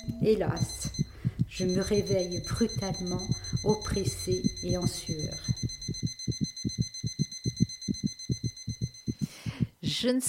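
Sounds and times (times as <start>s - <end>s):
heartbeat: 0.0s - 10.2s
speech: 0.2s - 0.9s, 1.6s - 5.5s, 10.0s - 10.2s.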